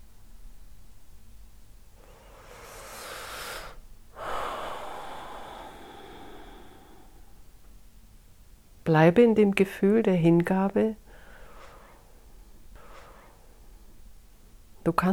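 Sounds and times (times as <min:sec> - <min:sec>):
deep breath drawn in on instruction: 0:02.0 - 0:07.8, 0:11.1 - 0:13.6
speech: 0:08.9 - 0:11.0, 0:14.9 - 0:15.1.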